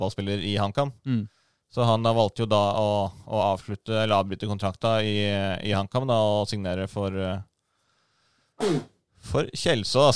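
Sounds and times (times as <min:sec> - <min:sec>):
speech: 0:00.0 - 0:07.5, 0:08.6 - 0:10.1
person sneezing: 0:08.6 - 0:09.0.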